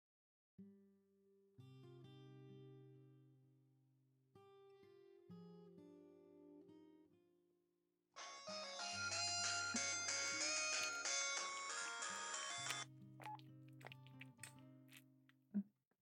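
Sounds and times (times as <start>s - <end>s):
melodic phone ringtone for an incoming call: 8.2s - 12.8s.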